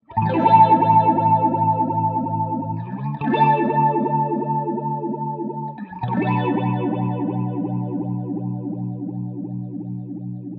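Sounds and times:
electric guitar vibrato: 0.1 - 9.4.

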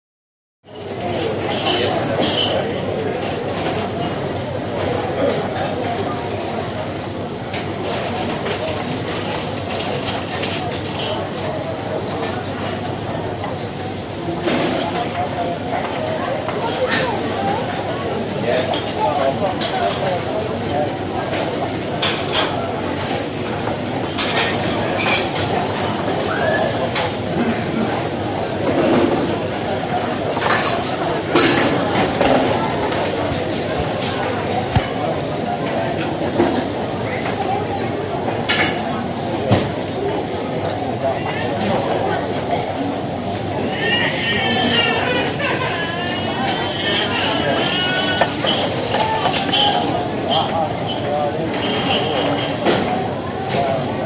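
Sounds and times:
Heathrow airport interior ambience: 0.7 - 54.0.

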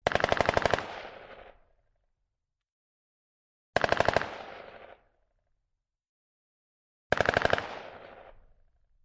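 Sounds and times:
distant M16 rifle rapid fire: 0.0 - 1.6, 3.8 - 5.1, 7.1 - 8.6.

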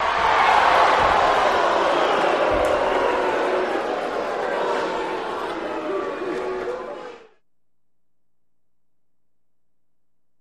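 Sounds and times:
boxing crowd reacting: 0.0 - 7.4.

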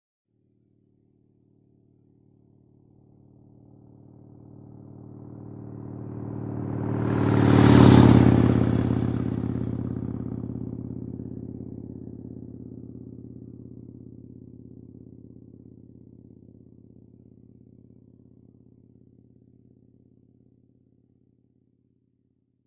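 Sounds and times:
Harley Davidson motorcycle engine: 2.0 - 20.5.

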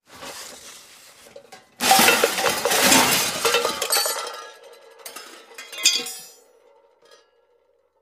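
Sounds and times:
junk box emptied on concrete: 1.7 - 6.2.

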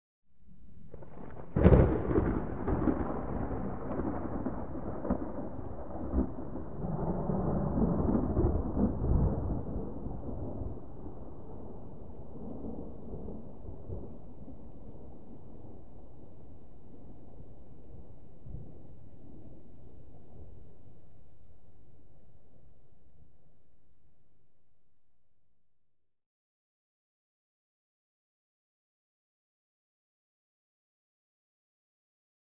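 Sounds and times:
medium thunder: 0.8 - 15.9.

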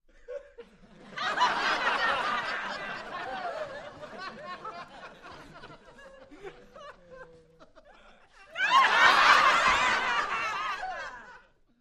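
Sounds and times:
laughter: 0.1 - 11.7
single hearty crowd cheer in a small interior: 0.9 - 7.0, 8.5 - 11.4.

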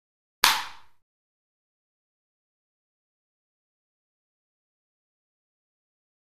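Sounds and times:
ping pong paddle hit: 0.4 - 1.0.

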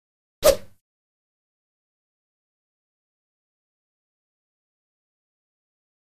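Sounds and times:
badminton whoosh: 0.4 - 0.8.

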